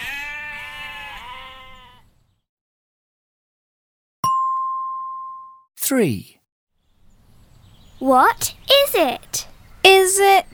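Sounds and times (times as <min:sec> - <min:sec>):
sheep giving a long wavering bleat: 0:00.0 - 0:02.0
bright bell-like ding: 0:04.2 - 0:05.6
speech: 0:05.9 - 0:06.4, 0:08.0 - 0:09.5, 0:10.1 - 0:10.5.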